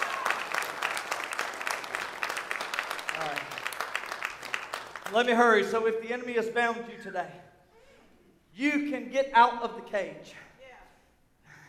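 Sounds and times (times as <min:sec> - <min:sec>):
congregation clapping hands in praise during a church service: 0:00.0 - 0:05.8
speech: 0:05.1 - 0:07.5, 0:08.6 - 0:10.5.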